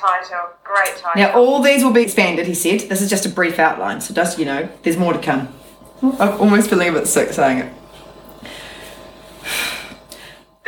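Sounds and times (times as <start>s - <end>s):
speech: 0.0s - 7.8s
deep breath drawn in sharply through nose and mouth: 8.4s - 10.6s.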